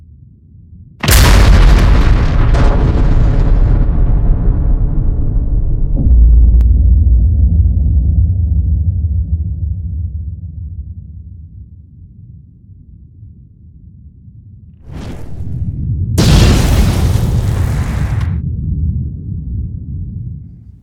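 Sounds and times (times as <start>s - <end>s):
roaring blast of noise: 1.0s - 6.6s, 14.8s - 18.6s
nuclear bomb explosion boom: 1.0s - 10.0s, 14.8s - 20.3s.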